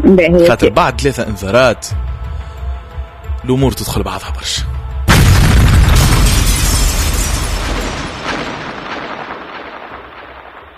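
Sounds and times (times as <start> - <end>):
speech: 0.1 - 2.1, 3.4 - 4.8
loud explosion with heavy low-end rumble and rolling roar: 5.1 - 10.7.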